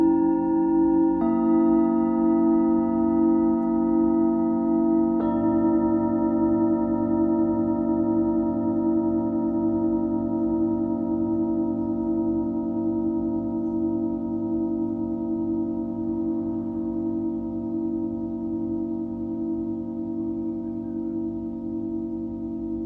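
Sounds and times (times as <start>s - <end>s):
Tibetan singing bowl ringing: 0.0s - 22.8s.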